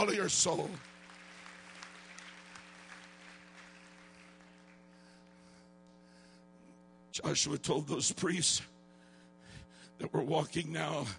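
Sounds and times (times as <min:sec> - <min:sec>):
speech: 0:00.0 - 0:00.9, 0:07.2 - 0:08.8, 0:10.0 - 0:11.1
audience clapping hands: 0:00.0 - 0:05.5
steady electrical hum: 0:00.0 - 0:11.1.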